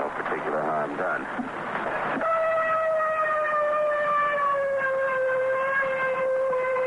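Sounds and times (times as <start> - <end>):
faint noise: 0.0 - 6.8
speech: 0.9 - 1.8
ship's siren blast signalling end of general quarters off the Normandy beaches: 2.2 - 6.8.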